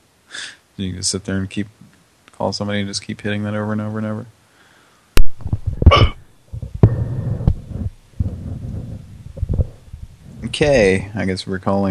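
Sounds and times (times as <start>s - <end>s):
low murmuring hum: 0.3s - 4.4s, 5.5s - 11.8s
speech: 0.8s - 4.4s, 10.6s - 11.8s
hiccups: 5.8s - 6.3s.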